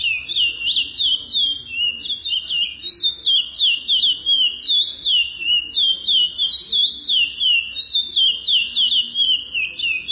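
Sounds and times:
chestnut-bellied seed finch whistled warbling song: 0:00.0 - 0:10.1.

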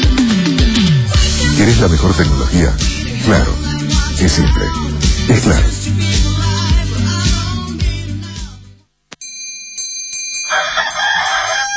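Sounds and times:
loud music: 0:00.0 - 0:08.6
speech: 0:01.6 - 0:03.6, 0:04.2 - 0:06.2
rooster crowing: 0:10.5 - 0:11.7.

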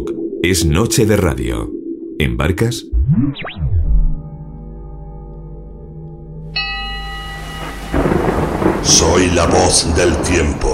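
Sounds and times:
speech: 0:00.4 - 0:03.6, 0:09.1 - 0:10.7
hissing wash of rain in a thunderstorm: 0:07.0 - 0:10.7
heavy low thunder rumble in a thunderstorm: 0:07.2 - 0:10.7.

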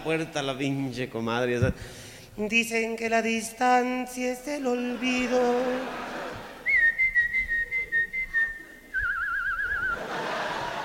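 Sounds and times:
speech: 0:00.0 - 0:06.1
laughter: 0:04.8 - 0:06.8, 0:09.8 - 0:10.8
woman whistling at a live comedy show: 0:06.7 - 0:10.0.

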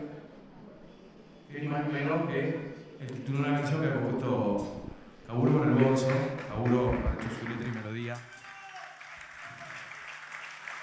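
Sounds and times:
speech: 0:01.5 - 0:08.4
audience applause at a blues festival: 0:05.4 - 0:10.8.

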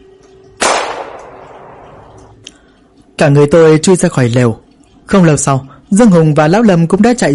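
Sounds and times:
gunshot near tents: 0:00.6 - 0:01.8
speech: 0:03.2 - 0:07.3.

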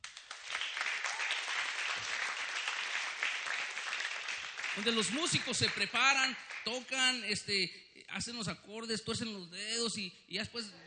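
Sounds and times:
applause for church musicians: 0:00.0 - 0:07.2
speech: 0:04.8 - 0:10.8.

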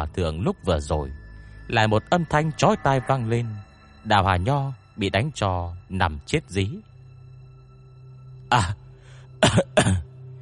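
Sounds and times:
speech: 0:00.0 - 0:06.9, 0:08.5 - 0:08.8, 0:09.4 - 0:10.0
man with an injured windpipe coughing hard while bent over: 0:09.4 - 0:10.2.

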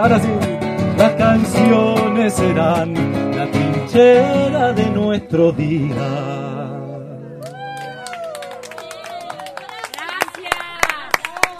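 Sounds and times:
speech: 0:00.0 - 0:06.8
audience applause for dancers at a live music show: 0:07.4 - 0:11.5
people whooping and cheering at a live music show: 0:07.4 - 0:11.5.

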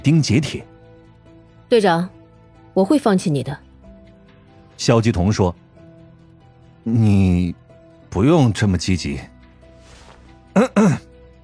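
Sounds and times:
speech: 0:00.0 - 0:00.7, 0:01.7 - 0:02.2, 0:02.8 - 0:03.6, 0:04.8 - 0:05.6, 0:06.8 - 0:09.3, 0:10.6 - 0:11.1
person coughing as part of a spoken story: 0:10.6 - 0:11.0.

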